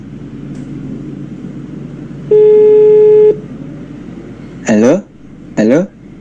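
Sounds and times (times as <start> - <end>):
faint low hum: 0.0 - 6.1
telephone call tone while dialing: 2.3 - 3.4
speech: 5.7 - 5.9.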